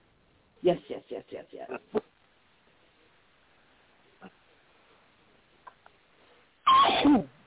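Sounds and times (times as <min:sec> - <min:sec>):
speech: 0:00.6 - 0:02.1
loud sharp sneeze: 0:06.7 - 0:07.4.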